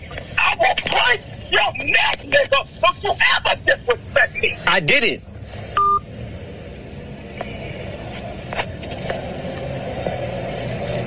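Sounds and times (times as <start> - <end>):
steady rumbling noise: 0.0 - 11.0
speech: 1.8 - 5.3
electronic phone hang-up tone: 5.8 - 6.0.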